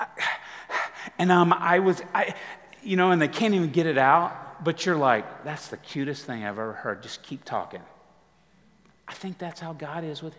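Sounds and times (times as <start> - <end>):
voice imitating a small child's heavy panting breathing: 0.2 - 1.2
speech: 1.2 - 7.9, 9.1 - 10.3.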